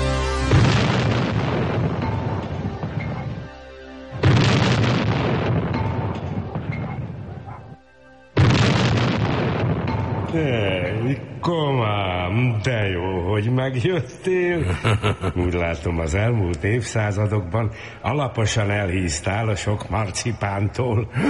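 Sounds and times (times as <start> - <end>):
heavy cannon blasts with rolling rumble: 0.4 - 3.5, 4.1 - 7.7, 8.4 - 10.3
speech: 10.4 - 21.2
laughter: 14.4 - 16.2.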